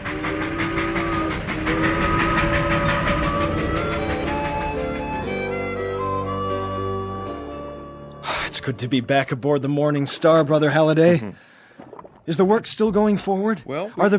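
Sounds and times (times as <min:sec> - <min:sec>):
train rolling on rails with rhythmic clickety-clack: 0:00.0 - 0:06.6
sustained whistle-like tones: 0:00.8 - 0:08.2
speech: 0:08.7 - 0:11.5, 0:12.3 - 0:14.1.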